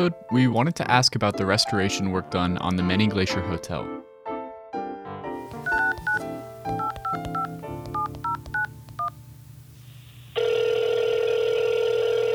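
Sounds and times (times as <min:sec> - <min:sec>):
speech: 0:00.0 - 0:04.1
loud steady telephone ringing tone: 0:05.5 - 0:09.2, 0:10.4 - 0:12.3
telephone keypad tones as a call is placed: 0:05.5 - 0:09.2.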